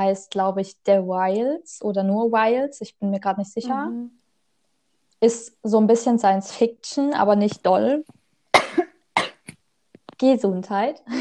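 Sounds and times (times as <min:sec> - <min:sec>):
speech: 0:00.0 - 0:04.2, 0:05.2 - 0:08.7, 0:10.2 - 0:11.1
person coughing: 0:08.6 - 0:09.6.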